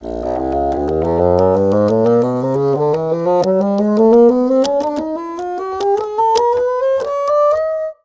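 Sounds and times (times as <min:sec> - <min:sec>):
bassoon playing across its range: 0:00.0 - 0:07.9.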